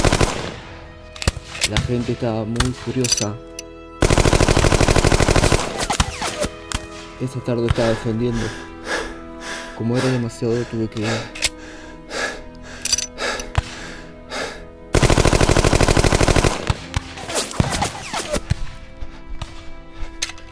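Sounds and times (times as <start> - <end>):
rapid bursts of gunfire: 0.0 - 3.0, 4.0 - 6.9, 15.0 - 18.6
speech: 1.6 - 3.5, 7.2 - 8.7, 9.8 - 11.4
bullets whizzing past a person: 5.7 - 6.9, 16.6 - 18.7.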